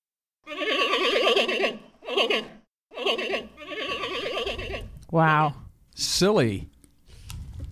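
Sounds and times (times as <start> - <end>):
giant panda giving quavering bleats: 0.4 - 4.9
speech: 5.1 - 6.8.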